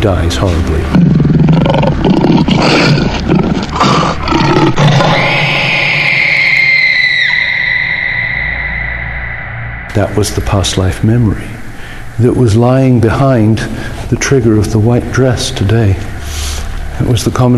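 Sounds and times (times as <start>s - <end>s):
speech: 0.0s - 5.1s, 10.0s - 11.6s, 12.2s - 16.1s, 17.0s - 17.5s
lion roaring: 0.7s - 9.0s.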